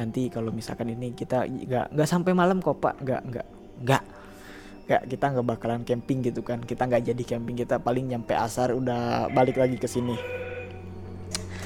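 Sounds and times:
speech: 0.0s - 4.2s, 4.9s - 10.4s
telephone ringing with a buzzing electronic tone: 9.2s - 11.0s
sharp click: 11.3s - 11.6s.

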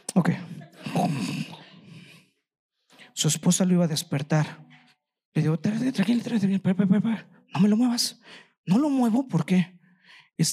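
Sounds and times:
speech: 0.2s - 0.5s, 3.2s - 4.7s, 5.4s - 10.5s
person imitating the snoring of a sleeping elderly man: 0.8s - 1.6s.

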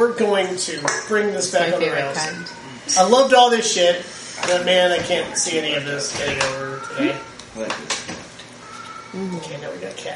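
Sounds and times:
speech: 0.0s - 8.2s, 9.1s - 10.1s
cat meowing: 5.2s - 7.3s, 8.6s - 9.7s.

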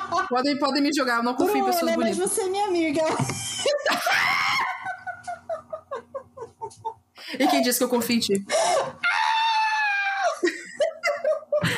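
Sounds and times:
speech: 0.3s - 4.3s, 7.4s - 8.6s
laughter: 3.4s - 7.8s, 10.2s - 11.7s
person screaming loudly: 9.0s - 10.4s.

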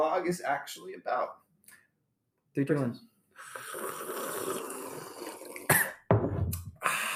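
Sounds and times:
speech: 0.1s - 1.8s, 2.6s - 4.7s
loud slurping sips of a hot drink with whole milk: 3.4s - 6.0s.

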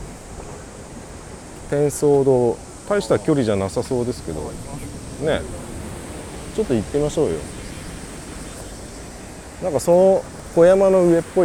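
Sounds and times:
ocean waves washing onto a rocky shore: 0.0s - 11.4s
wind-like hiss: 0.0s - 11.4s
speech: 1.7s - 5.6s, 6.6s - 7.6s, 9.6s - 11.4s.

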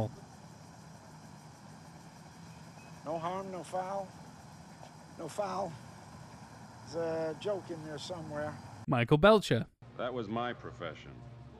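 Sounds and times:
car engine idling: 0.0s - 8.8s
speech: 3.6s - 4.2s, 5.2s - 5.8s, 6.9s - 11.3s.

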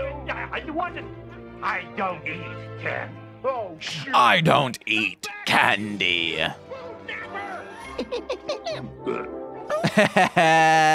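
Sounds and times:
speech: 0.3s - 6.6s, 8.0s - 10.9s
laughter: 7.8s - 8.9s, 9.7s - 10.9s
voice imitating clumsy childlike belching: 8.8s - 9.4s.

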